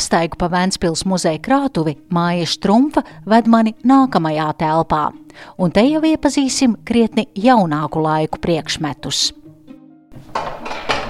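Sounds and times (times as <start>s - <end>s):
speech: 0.0s - 9.4s
heavy storage room door creaking: 10.1s - 11.0s.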